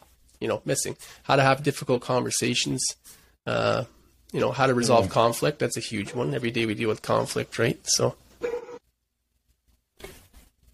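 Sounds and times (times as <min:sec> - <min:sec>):
speech: 0:00.4 - 0:08.2
dog barking excitedly: 0:08.4 - 0:08.8.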